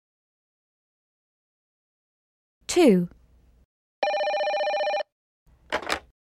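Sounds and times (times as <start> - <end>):
speech: 2.8 - 3.2
mobile phone ringing with a bright trilling electronic tone: 4.0 - 5.1.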